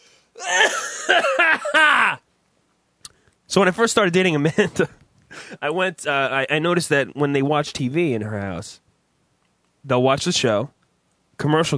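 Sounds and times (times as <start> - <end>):
raspy coughing fit with wheezing: 0.4 - 2.2
speech: 0.4 - 2.2, 3.6 - 8.8, 9.8 - 10.8, 11.4 - 11.7.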